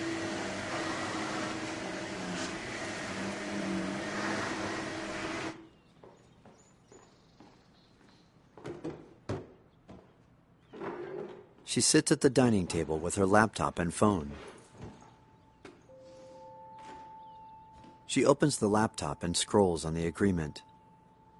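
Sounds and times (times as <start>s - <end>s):
vacuum cleaner pushed back and forth over a rug: 0.0s - 5.6s
speech: 11.7s - 14.5s, 18.1s - 20.7s.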